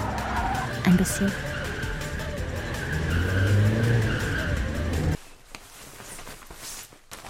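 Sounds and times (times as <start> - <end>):
car tires squealing on ice: 0.0 - 5.2
speech: 0.8 - 1.5
rustling: 5.2 - 7.2.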